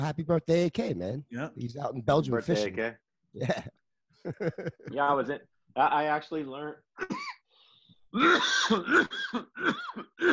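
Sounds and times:
speech: 0:00.0 - 0:07.4, 0:08.1 - 0:10.3
laughter: 0:03.4 - 0:03.7, 0:04.3 - 0:05.2
rough throaty cough: 0:07.0 - 0:07.4, 0:08.2 - 0:10.3.

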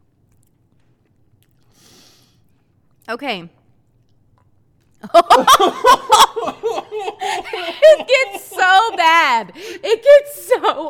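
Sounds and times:
chewing food: 0:00.0 - 0:01.8, 0:02.4 - 0:05.0
speech: 0:03.1 - 0:03.6, 0:05.0 - 0:06.2, 0:07.3 - 0:10.8
laughter: 0:05.1 - 0:10.8.

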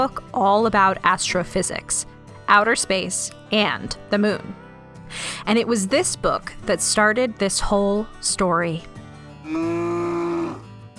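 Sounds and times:
speech: 0:00.0 - 0:08.9, 0:09.5 - 0:09.8
cow mooing: 0:09.4 - 0:10.7.

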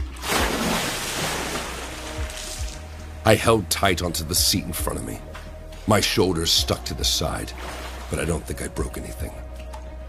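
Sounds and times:
rushing river water: 0:00.0 - 0:03.0, 0:07.4 - 0:08.4
speech: 0:03.3 - 0:05.3, 0:05.9 - 0:09.4.

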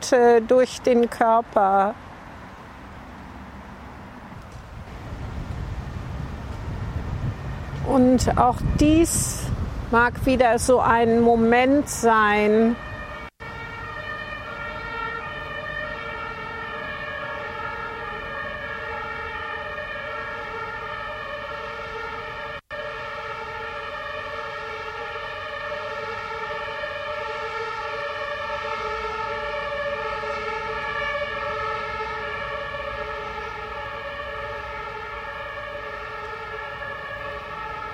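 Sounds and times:
speech: 0:00.1 - 0:02.1, 0:07.9 - 0:12.9
ambulance siren: 0:06.4 - 0:09.6, 0:11.6 - 0:37.9.

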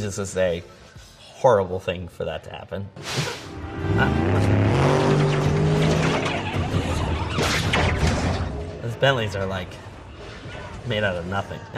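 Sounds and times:
speech: 0:00.0 - 0:00.8, 0:01.4 - 0:04.6, 0:09.0 - 0:09.9, 0:10.8 - 0:11.7
powerful 5,000-horsepower car engine revving in a movie scene: 0:03.5 - 0:09.0
rough tire and road noise: 0:03.5 - 0:11.6.

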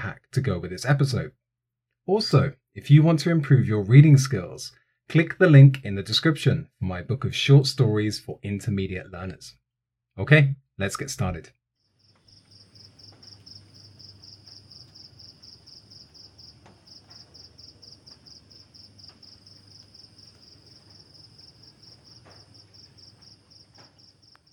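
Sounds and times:
speech: 0:00.1 - 0:01.4, 0:02.1 - 0:09.6, 0:10.2 - 0:11.6
cricket chorus chirping in a jungle at night: 0:11.9 - 0:24.5.

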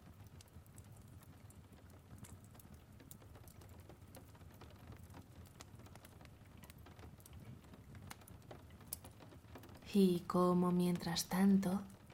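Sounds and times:
raindrops tapping on a window: 0:00.0 - 0:12.1
speech: 0:09.9 - 0:11.9.

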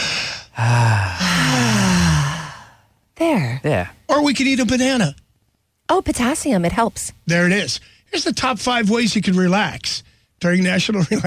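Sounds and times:
group taking a deep breath together: 0:00.0 - 0:03.0
speech: 0:03.4 - 0:05.2, 0:05.9 - 0:11.2.

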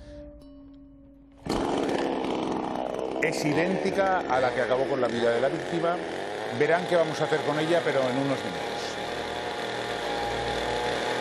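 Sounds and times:
chainsaw idling and revving at full throttle: 0:01.4 - 0:11.2
speech: 0:03.2 - 0:08.7.

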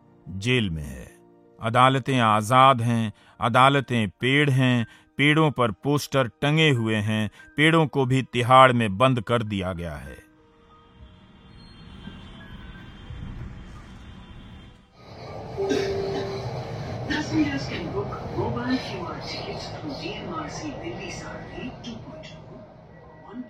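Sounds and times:
speech: 0:00.3 - 0:10.2, 0:17.4 - 0:22.4
metro train running with continuous rumbling roar: 0:11.9 - 0:23.4
indistinct voices murmuring: 0:15.1 - 0:23.4.

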